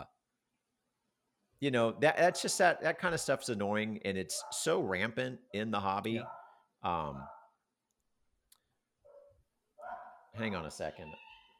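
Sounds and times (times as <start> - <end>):
speech: 1.6 - 7.4, 10.4 - 11.2
dog barks: 4.3 - 4.8, 6.2 - 7.6, 9.1 - 11.2.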